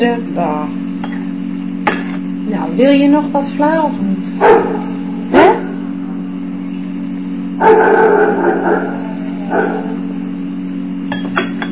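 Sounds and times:
steady low hum: 0.0s - 11.7s
speech: 2.8s - 4.8s
dog barking: 4.4s - 6.2s, 7.6s - 10.1s.

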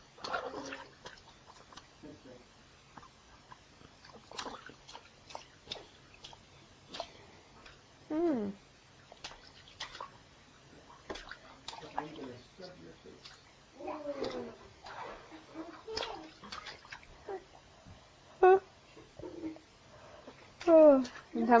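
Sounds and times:
baby in a bathtub splashing bath water: 0.1s - 1.9s, 3.5s - 7.9s, 9.1s - 17.7s, 20.3s - 21.5s
speech: 20.9s - 21.5s.

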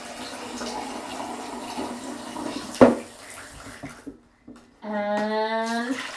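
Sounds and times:
running water pouring from a bath tap: 0.0s - 4.2s, 5.6s - 6.1s.

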